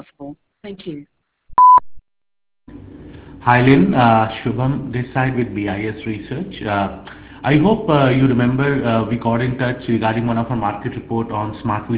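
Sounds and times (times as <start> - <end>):
speech: 0.3 - 1.1, 3.4 - 11.9
answering machine beep: 1.6 - 1.8.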